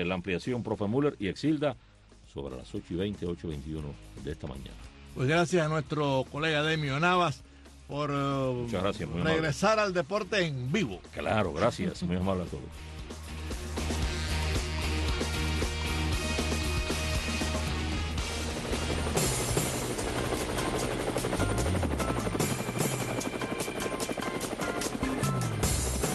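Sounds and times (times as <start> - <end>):
speech: 0.0 - 12.9
helicopter rotor blades whirring: 12.8 - 26.1.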